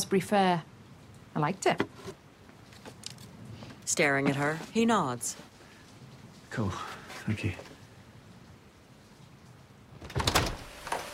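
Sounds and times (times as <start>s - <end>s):
speech: 0.0s - 0.7s, 1.3s - 2.2s, 3.9s - 5.5s, 6.5s - 7.7s
house front door opening: 10.0s - 11.1s.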